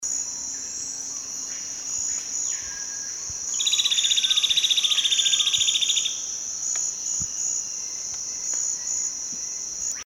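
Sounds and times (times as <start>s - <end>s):
chupa dente de cinta singing: 2.4s - 6.3s.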